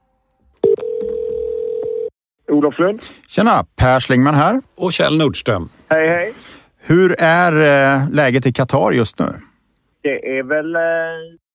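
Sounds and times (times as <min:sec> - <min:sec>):
telephone ringing tone of an outgoing call: 0:00.6 - 0:02.1
speech: 0:02.6 - 0:11.4.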